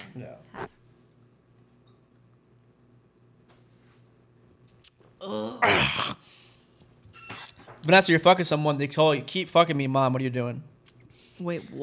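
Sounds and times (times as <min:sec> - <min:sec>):
quiet room hum: 0:00.0 - 0:11.8
speech: 0:00.2 - 0:00.8, 0:05.2 - 0:06.4, 0:07.8 - 0:10.7, 0:11.4 - 0:11.8
glasses clinking together in a toast: 0:07.1 - 0:07.7.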